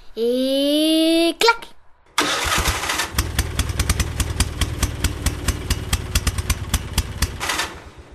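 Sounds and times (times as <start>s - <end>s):
speech: 0.2s - 0.6s
small car engine starting and rattling at idle: 2.2s - 8.1s.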